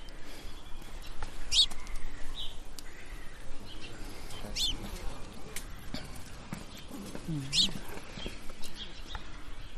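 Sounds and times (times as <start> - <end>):
house sparrows chirping: 0.0 - 9.7
faint murmuring voices: 2.9 - 9.6.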